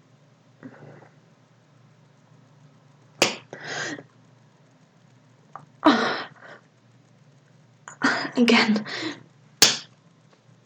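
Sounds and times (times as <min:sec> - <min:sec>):
hand slapping skin: 0:03.2 - 0:03.5, 0:09.6 - 0:09.9
speech: 0:08.4 - 0:09.2.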